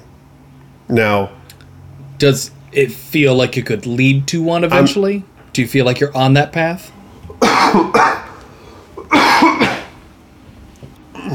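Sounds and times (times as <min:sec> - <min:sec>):
speech: 0:00.9 - 0:01.4, 0:02.2 - 0:07.0, 0:07.7 - 0:08.2
faint throat noise: 0:04.7 - 0:05.0
man coughing: 0:04.7 - 0:05.0, 0:07.4 - 0:08.4, 0:09.0 - 0:10.0.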